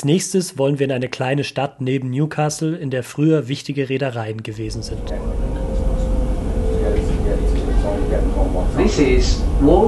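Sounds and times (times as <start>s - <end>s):
speech: 0.0s - 5.4s, 8.7s - 9.8s
Newcastle metro train rumbling in motion, heard from inside the carriage: 4.6s - 9.8s
metro train motor whine: 4.6s - 9.8s.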